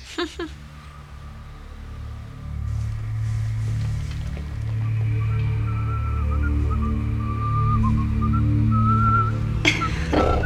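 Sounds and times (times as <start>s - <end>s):
laughter: 0.0s - 0.7s, 9.6s - 10.4s
steady low rumble: 0.0s - 10.4s
rustles: 2.6s - 5.7s
man whistling a wavering melody: 4.8s - 10.4s.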